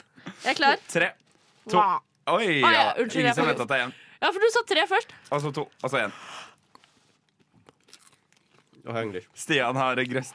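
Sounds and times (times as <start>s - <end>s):
speech: 0.4s - 6.3s, 8.8s - 10.3s
crunchy chewing of a dry snack: 6.6s - 10.3s.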